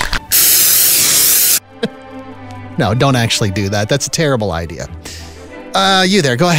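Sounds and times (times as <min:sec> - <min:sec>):
spray paint can hissing: 0:00.0 - 0:01.6
speech: 0:01.8 - 0:02.0, 0:02.8 - 0:05.0, 0:05.8 - 0:06.5.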